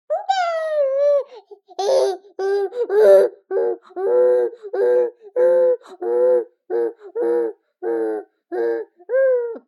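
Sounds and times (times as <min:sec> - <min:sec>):
three-month-old baby boy whining, unsettled: 0:00.1 - 0:09.6.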